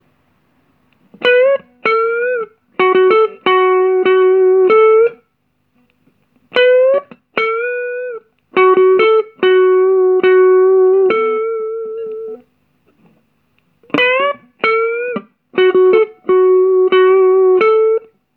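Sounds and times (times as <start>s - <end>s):
blues guitar lick: 1.1s - 5.2s, 6.5s - 12.4s, 13.8s - 18.1s.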